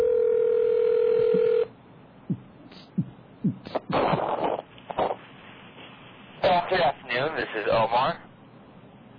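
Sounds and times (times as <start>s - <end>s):
telephone dial tone: 0.0s - 1.7s
telephone dialing tones and clicks: 1.0s - 1.7s
noisy rustles: 3.6s - 6.9s
speech: 7.4s - 8.3s.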